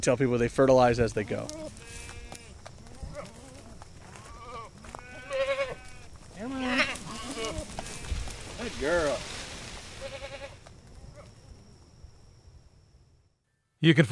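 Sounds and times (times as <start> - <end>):
speech: 0.0 - 1.8, 8.7 - 9.3, 13.8 - 14.1
goats bleating: 1.2 - 11.3.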